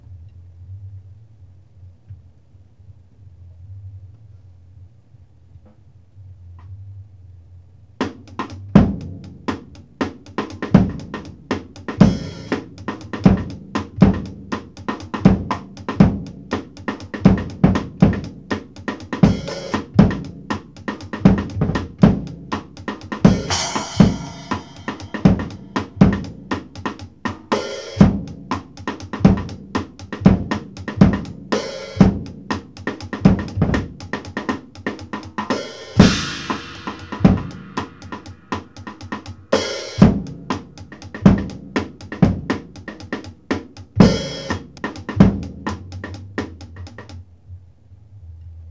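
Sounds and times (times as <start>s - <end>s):
complex acoustic funk beat with rim at 120 BPM: 8.0s - 47.2s.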